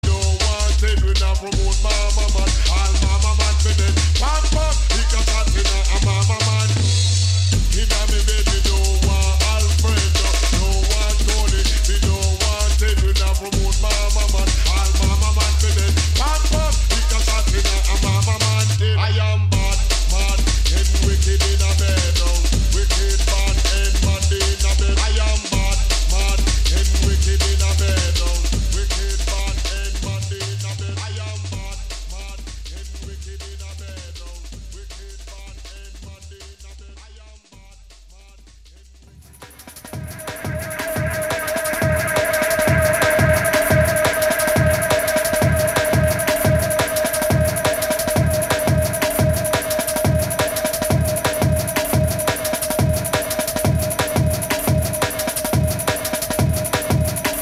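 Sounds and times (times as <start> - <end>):
drum and bass music: 0.0 - 57.4.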